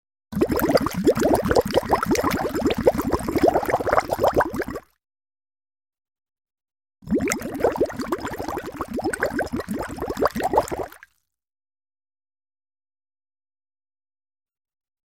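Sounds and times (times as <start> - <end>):
bubbling water: 0.4 - 4.9, 7.0 - 11.1.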